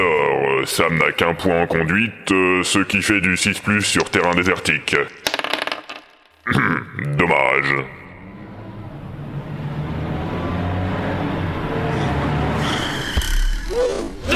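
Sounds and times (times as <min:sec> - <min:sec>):
speech: 0:00.0 - 0:05.2, 0:06.4 - 0:08.0
car engine roaring: 0:07.7 - 0:13.3
harsh whining noise as the vehicle tumbles: 0:08.0 - 0:14.2.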